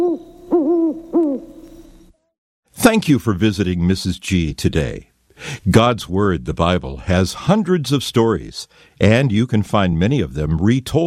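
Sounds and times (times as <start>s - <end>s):
great owl hooting: 0.0s - 2.1s
speech: 2.8s - 11.0s.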